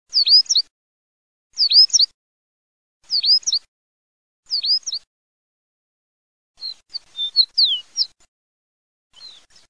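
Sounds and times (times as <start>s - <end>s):
horned lark singing: 0.1s - 0.7s, 1.6s - 2.1s, 3.0s - 3.7s, 4.5s - 5.1s, 6.6s - 8.3s, 9.1s - 9.6s.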